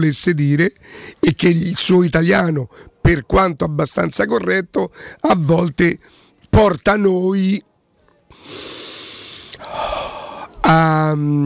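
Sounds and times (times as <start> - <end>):
speech: 0.0 - 7.7, 10.7 - 11.4
loud sharp raspy nasal intake of breath: 0.8 - 1.2, 4.9 - 5.2, 8.3 - 10.6.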